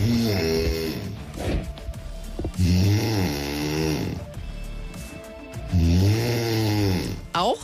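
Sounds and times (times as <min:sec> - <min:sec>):
woman snoring with long rasping breaths: 0:00.0 - 0:01.4, 0:02.5 - 0:04.4, 0:05.6 - 0:07.4.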